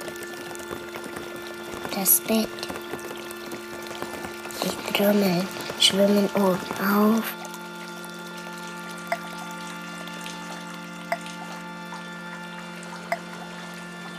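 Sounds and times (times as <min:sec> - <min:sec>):
faint hum: 0:00.0 - 0:14.1
water pouring steadily as the water rises: 0:00.0 - 0:14.1
speech: 0:02.0 - 0:02.8, 0:05.0 - 0:07.4
soft plinks: 0:13.0 - 0:14.1.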